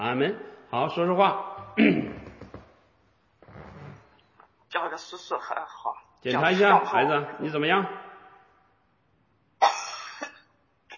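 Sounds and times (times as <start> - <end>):
speech: 0.0 - 2.3, 4.8 - 8.0
child clearing throat: 1.8 - 2.2, 9.6 - 10.4
child giving a rough drawn-out cough: 9.6 - 10.5.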